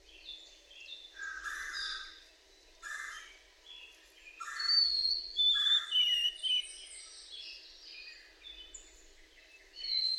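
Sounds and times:
white-throated sparrow whistling song: 4.4 - 7.2, 9.8 - 10.1.

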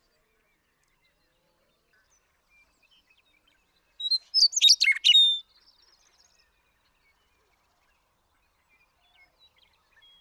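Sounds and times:
western meadowlark singing: 4.0 - 5.4.

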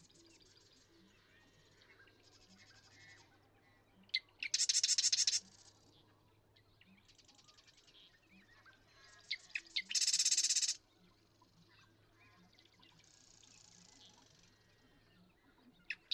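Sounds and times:
Marsh Wren song rattling trills: 4.5 - 5.4, 9.8 - 10.8.

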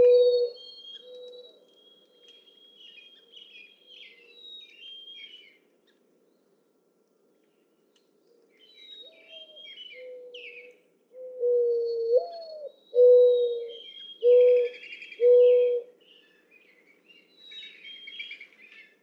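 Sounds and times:
mourning dove cooing song: 0.0 - 0.6, 11.2 - 15.9.

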